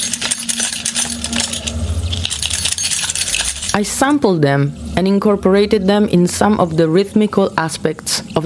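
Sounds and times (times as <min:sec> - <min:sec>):
keys jingling: 0:00.0 - 0:03.8
low humming bass tone: 0:00.1 - 0:08.4
speech: 0:03.8 - 0:08.4.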